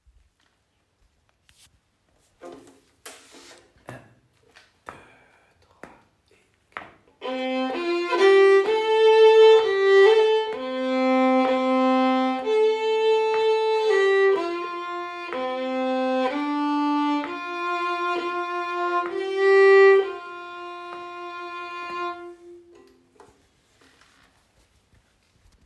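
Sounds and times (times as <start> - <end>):
Irish ballad on violin: 7.2 - 23.0.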